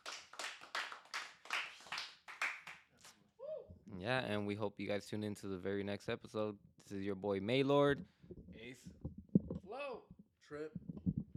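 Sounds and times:
a few people clapping hands: 0:00.0 - 0:03.2
speech: 0:03.9 - 0:09.1, 0:09.8 - 0:10.9.

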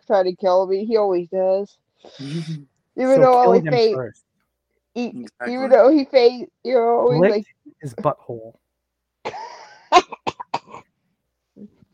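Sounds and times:
speech: 0:00.1 - 0:04.2, 0:05.0 - 0:08.6
person coughing: 0:10.0 - 0:10.9.

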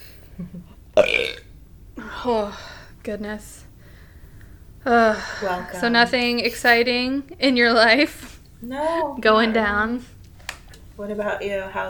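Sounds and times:
speech: 0:00.4 - 0:00.8, 0:02.2 - 0:03.7, 0:04.8 - 0:10.2, 0:11.0 - 0:11.8
raspy throaty burp: 0:01.0 - 0:01.5.

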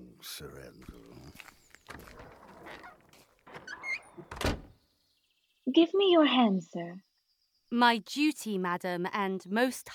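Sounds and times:
speech: 0:00.2 - 0:02.0, 0:05.8 - 0:07.1, 0:07.7 - 0:09.9
garden door scraping and creaking as it swings: 0:01.1 - 0:04.8
solid thump of garden door closing: 0:03.5 - 0:04.8.

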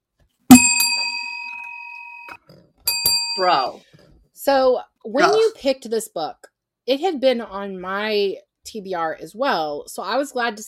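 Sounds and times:
bright bell struck and ringing: 0:00.5 - 0:03.8
speech: 0:03.4 - 0:10.6.

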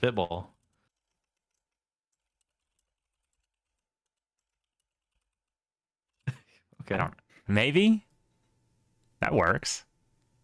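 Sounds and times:
speech: 0:00.0 - 0:00.6, 0:06.8 - 0:08.1, 0:09.2 - 0:09.9
typing on a computer keyboard: 0:00.6 - 0:06.2.

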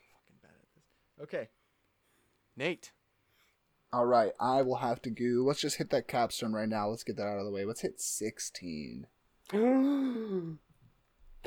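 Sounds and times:
speech: 0:01.2 - 0:01.6, 0:02.6 - 0:03.0, 0:03.9 - 0:10.6
loud drawn-out voiced gasp: 0:09.5 - 0:10.6.

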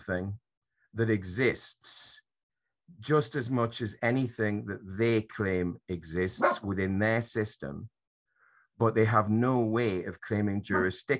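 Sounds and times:
speech: 0:00.1 - 0:02.2, 0:02.9 - 0:08.0, 0:08.8 - 0:11.1
dog barking: 0:06.4 - 0:06.6.

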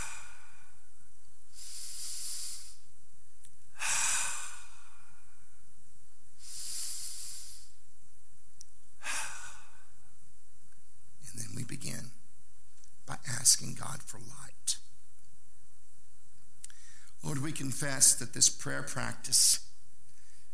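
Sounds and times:
slow deep breaths drawn in and sighed out: 0:00.0 - 0:00.9, 0:01.5 - 0:02.9, 0:03.7 - 0:05.6, 0:06.4 - 0:07.8, 0:09.0 - 0:10.2, 0:16.6 - 0:17.2
speech: 0:13.4 - 0:14.6, 0:17.3 - 0:19.6.

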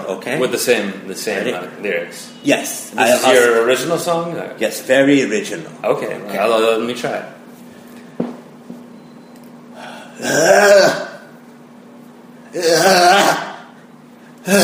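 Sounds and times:
speech: 0:00.1 - 0:07.4, 0:10.2 - 0:11.0
person clearing throat: 0:09.9 - 0:11.3, 0:12.5 - 0:13.7, 0:14.4 - 0:14.6.

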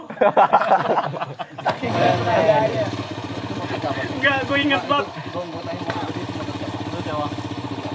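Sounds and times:
people laughing: 0:00.0 - 0:05.5
speech: 0:00.1 - 0:03.1, 0:03.7 - 0:06.2
motorcycle engine idling with a low even rumble: 0:00.8 - 0:07.9.

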